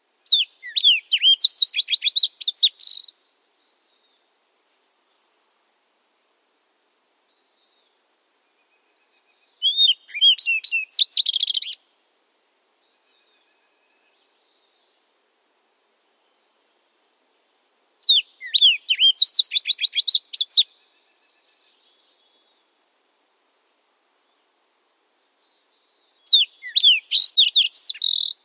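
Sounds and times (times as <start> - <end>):
fox sparrow: 0.3 - 3.2, 9.6 - 11.8, 18.0 - 20.7, 26.2 - 28.4.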